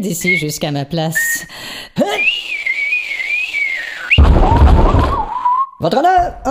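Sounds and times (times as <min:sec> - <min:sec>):
speech: 0:00.0 - 0:02.6, 0:05.8 - 0:06.4
person whistling a long high note: 0:00.2 - 0:00.6, 0:01.2 - 0:04.2, 0:04.9 - 0:05.8
loud noisy clatter: 0:04.2 - 0:05.3.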